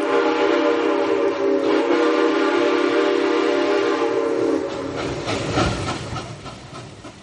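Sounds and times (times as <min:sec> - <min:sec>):
loud sustained train whistle: 0:00.0 - 0:05.1
rumbling clatter of a rolling train: 0:00.0 - 0:07.2.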